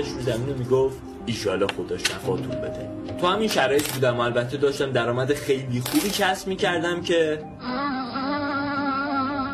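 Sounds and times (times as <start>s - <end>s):
speech: 0.0s - 7.8s
mosquito buzzing: 7.6s - 9.5s.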